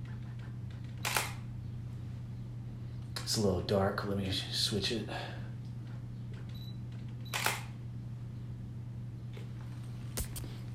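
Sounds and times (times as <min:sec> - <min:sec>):
low steady hum: 0:00.0 - 0:10.7
single crisp camera shutter click: 0:01.0 - 0:01.4, 0:07.3 - 0:07.7
speech: 0:03.3 - 0:05.4.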